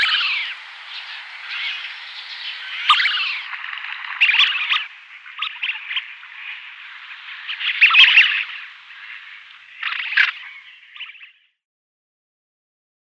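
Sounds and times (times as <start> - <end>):
male tufted ducks chattering: 0.0 - 10.8.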